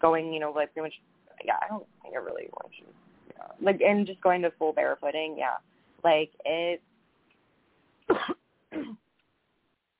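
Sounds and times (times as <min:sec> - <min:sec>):
speech: 0:00.0 - 0:06.9
person clearing throat and coughing: 0:08.1 - 0:09.0.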